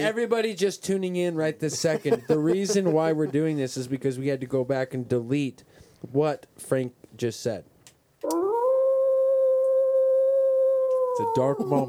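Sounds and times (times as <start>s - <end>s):
speech: 0.0s - 8.4s, 11.2s - 11.8s
laughter: 1.7s - 3.6s, 11.4s - 11.8s
wolf howling: 8.2s - 11.8s.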